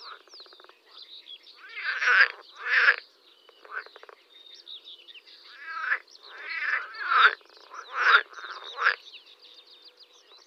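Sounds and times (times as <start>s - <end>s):
water frog croaking in pulsed bursts: 0.0s - 1.0s, 1.6s - 4.3s, 5.5s - 9.1s.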